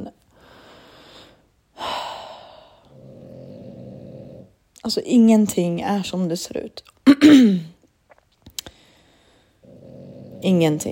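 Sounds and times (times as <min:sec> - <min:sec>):
female dog snoring: 0:02.8 - 0:04.6, 0:09.6 - 0:10.9
speech: 0:04.8 - 0:07.7, 0:10.4 - 0:10.9.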